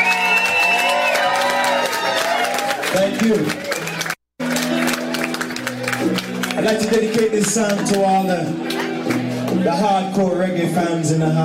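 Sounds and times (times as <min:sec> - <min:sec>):
audience whoops and shouting voices at a live reggae show: 0:00.0 - 0:02.8
audience applause and cheering at a live reggae show: 0:00.0 - 0:09.7
speech: 0:03.0 - 0:03.6, 0:06.6 - 0:08.8, 0:09.5 - 0:11.4.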